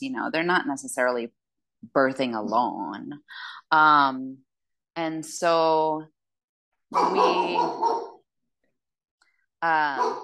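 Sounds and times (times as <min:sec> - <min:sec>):
speech: 0:00.0 - 0:04.4, 0:05.0 - 0:06.2, 0:06.9 - 0:08.1, 0:09.6 - 0:10.2
pet dog barking outside: 0:06.9 - 0:08.2, 0:10.0 - 0:10.2.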